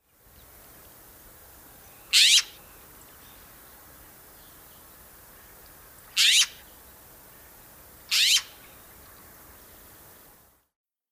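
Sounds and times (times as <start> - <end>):
harsh rasping upward squawk call of a jay: 8.1 - 8.5.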